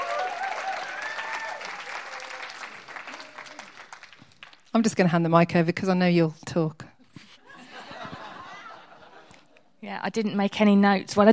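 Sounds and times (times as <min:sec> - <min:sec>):
audience whooping and cheering: 0:00.0 - 0:03.8
audience clapping: 0:00.0 - 0:04.7
speech: 0:04.7 - 0:06.8, 0:09.8 - 0:11.3
laughter: 0:07.4 - 0:09.7.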